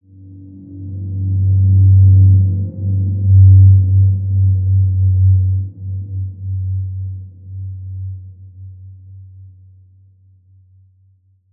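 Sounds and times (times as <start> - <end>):
healing ambient soundscape: 0.1 - 8.1.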